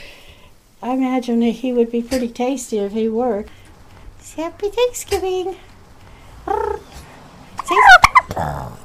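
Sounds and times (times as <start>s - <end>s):
speech: 0.8s - 3.6s, 4.4s - 5.7s, 8.4s - 8.8s
domestic turkey belching in Ketchikan: 7.6s - 8.8s.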